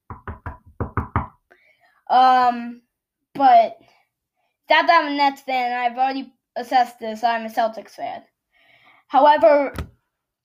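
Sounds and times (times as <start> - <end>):
crisp knocks on wood: 0.1 - 1.4
speech: 2.1 - 4.0, 4.7 - 8.3, 9.1 - 9.9.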